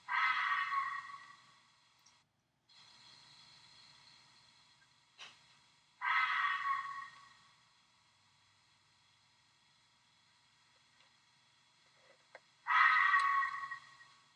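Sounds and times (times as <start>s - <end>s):
vixen fox screaming at night: 6.0s - 7.1s, 12.7s - 13.8s.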